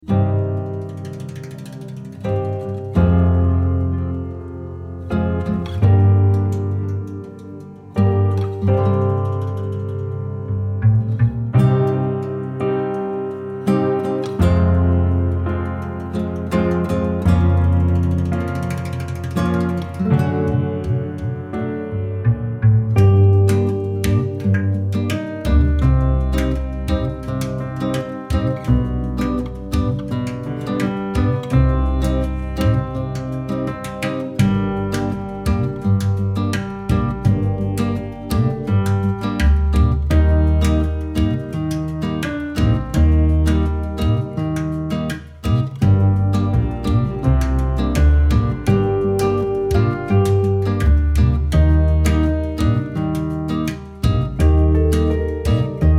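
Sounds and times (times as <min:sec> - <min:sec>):
floating acoustic music: 0:00.0 - 0:55.9.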